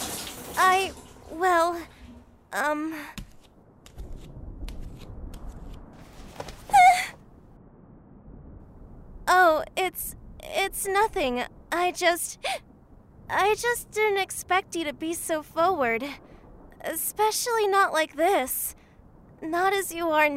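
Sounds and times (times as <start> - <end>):
shower water running: 0.0 - 2.3
speech: 0.6 - 3.2, 9.3 - 12.7, 13.3 - 18.8, 19.4 - 20.3.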